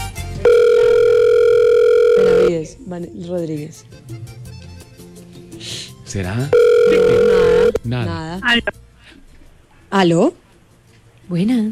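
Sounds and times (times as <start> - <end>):
steady electronic telephone ringback tone: 0.4 - 2.6, 6.5 - 7.8
speech: 2.8 - 4.4, 6.1 - 8.8, 9.9 - 10.4, 11.3 - 11.6.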